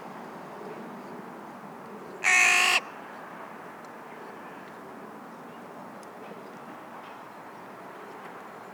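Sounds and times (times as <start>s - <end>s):
carrion crow cawing: 2.2s - 2.8s.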